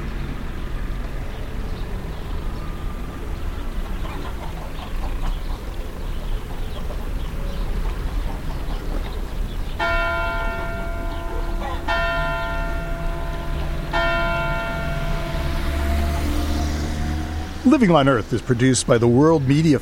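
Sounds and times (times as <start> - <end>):
scattered bird chirps: 0.0 - 19.8
rooster crowing in the morning in an agricultural town in France: 10.4 - 17.5
speech: 17.7 - 19.8.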